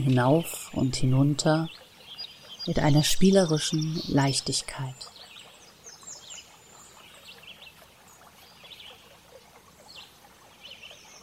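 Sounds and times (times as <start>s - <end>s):
speech: 0.0s - 1.8s, 2.6s - 5.1s
birds chirping in a forest: 0.0s - 11.2s.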